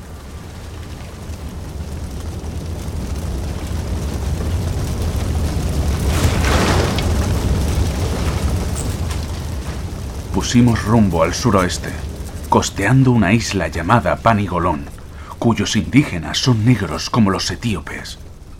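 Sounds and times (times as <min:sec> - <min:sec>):
roaring blaze of a ship set alight with torches: 0:00.0 - 0:18.5
ship exploding blast: 0:04.0 - 0:12.9
speech: 0:10.4 - 0:18.2.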